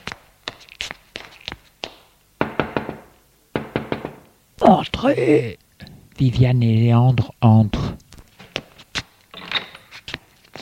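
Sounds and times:
knocking on a bedroom door: 2.4 - 4.3
speech: 4.6 - 5.6, 6.2 - 7.9.

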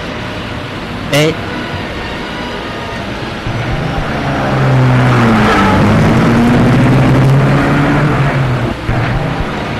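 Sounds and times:
speech: 1.1 - 1.7
car engine accelerating as it pulls off: 3.4 - 9.7.

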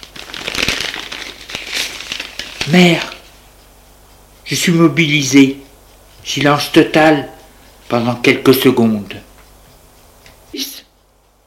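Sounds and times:
sheet of paper notice rustling and crinkling as it is unfolded and read: 0.0 - 3.3
speech: 2.6 - 3.1, 4.5 - 5.6, 6.2 - 9.3.

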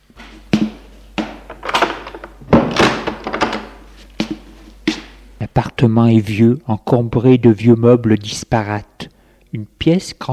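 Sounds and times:
door shutting with a solid thunk: 0.2 - 3.9
knocking and rattling bumps: 0.2 - 5.2
speech: 5.5 - 10.3.

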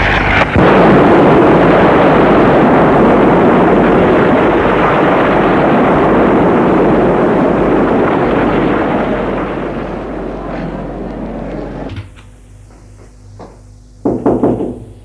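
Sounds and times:
loud steady rumble: 0.0 - 15.0
sharp knocks on a door: 13.4 - 15.0.

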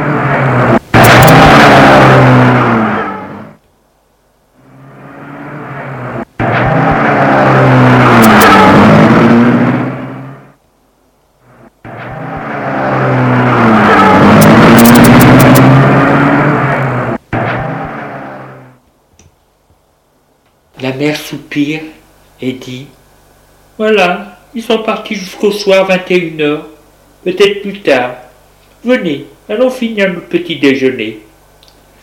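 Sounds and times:
car engines revving as cars drive away from a house: 0.0 - 3.6, 4.5 - 10.6, 11.4 - 18.8
speech: 22.5 - 22.9, 23.8 - 28.2, 28.8 - 31.3.

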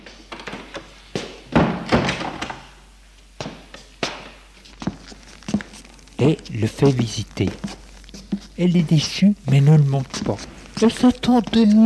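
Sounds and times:
wooden door pushed shut: 1.5 - 2.6
speech: 6.2 - 7.8, 8.6 - 11.8.

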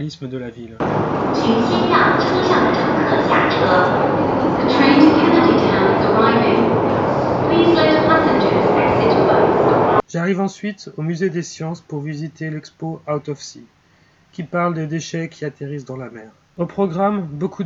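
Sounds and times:
speech: 0.0 - 9.4, 10.1 - 13.8, 14.4 - 17.6
metro train carriage rumble in motion: 0.8 - 10.0
voice making onboard announcements on a metro train: 0.8 - 10.0.

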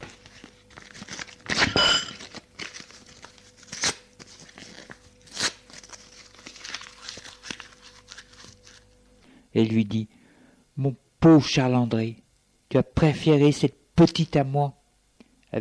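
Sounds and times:
paper letter being torn up: 0.3 - 9.0
speech: 9.6 - 10.2, 10.8 - 14.8.

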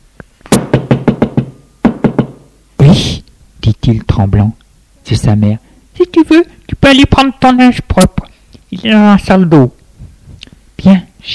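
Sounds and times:
knocking on a door: 0.5 - 2.5
speech: 3.9 - 9.8, 10.8 - 11.3.

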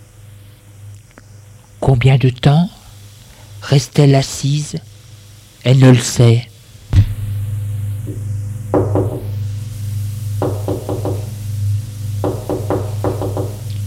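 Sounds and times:
speech: 1.9 - 2.8, 3.6 - 4.9, 5.6 - 6.5
steady low hum: 6.8 - 13.8
knocking on a door: 8.7 - 9.3, 10.4 - 11.3, 12.2 - 13.6.

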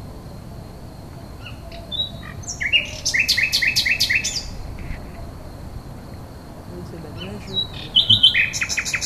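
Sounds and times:
common nightingale singing: 1.1 - 9.0.

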